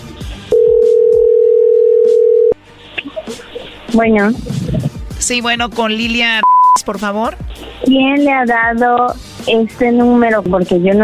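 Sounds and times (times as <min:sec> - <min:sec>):
single-pitch telephone dial tone: 0:00.6 - 0:02.6
speech: 0:03.9 - 0:04.6, 0:05.2 - 0:11.0.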